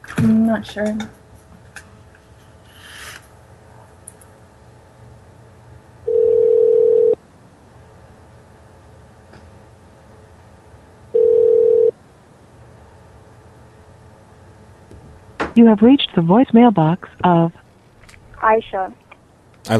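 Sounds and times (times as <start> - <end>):
speech: 0.2 - 1.2, 15.6 - 17.6, 18.4 - 19.0
telephone ringback tone on an outgoing call: 6.1 - 7.2, 11.1 - 12.0.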